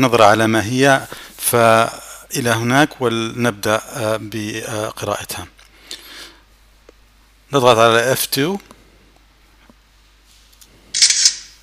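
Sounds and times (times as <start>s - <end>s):
speech: 0.0s - 5.6s, 7.5s - 8.7s
synthetic camera shutter click: 11.0s - 11.6s.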